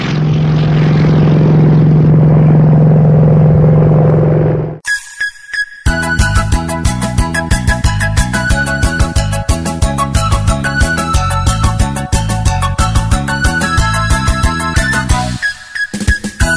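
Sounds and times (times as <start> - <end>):
propeller airplane droning in the sky: 0.0 - 4.8
bouncy rhythmic music: 4.8 - 16.5.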